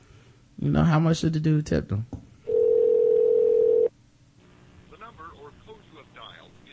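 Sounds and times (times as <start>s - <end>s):
speech: 0.6s - 2.2s
steady telephone tone of a call to a switched-off phone: 2.5s - 3.9s
voice speaking over a phone line: 4.9s - 6.7s.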